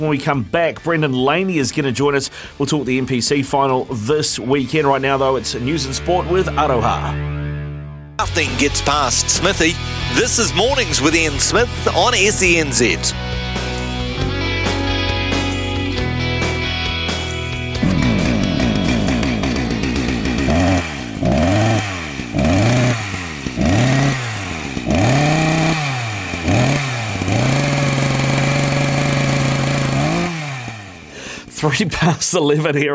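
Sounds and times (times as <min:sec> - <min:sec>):
speech: 0:00.0 - 0:07.4, 0:08.2 - 0:13.7, 0:31.7 - 0:32.9
short musical intro: 0:04.8 - 0:20.6
chainsaw engine sound effect revving: 0:08.2 - 0:13.1, 0:17.8 - 0:31.5.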